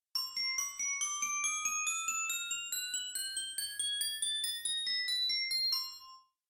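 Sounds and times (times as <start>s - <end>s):
glockenspiel: 0.1s - 6.4s.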